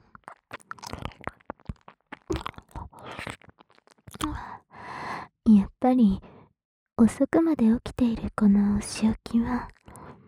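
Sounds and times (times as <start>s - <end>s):
hard candy crunching between the teeth: 0.0s - 4.5s, 9.6s - 10.2s
speech: 5.9s - 6.3s, 7.0s - 9.8s.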